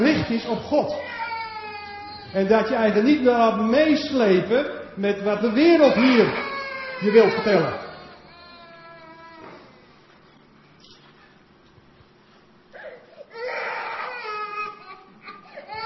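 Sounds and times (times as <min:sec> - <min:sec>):
speech: 0:00.2 - 0:01.2, 0:02.3 - 0:07.8
baby crying: 0:00.9 - 0:02.4, 0:05.5 - 0:09.6, 0:12.8 - 0:15.8.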